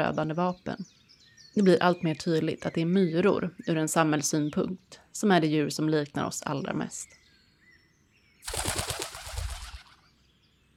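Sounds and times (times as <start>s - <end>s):
speech: 0.0s - 1.0s, 1.6s - 7.2s
pigeon wings flapping as the bird takes off: 8.5s - 10.0s.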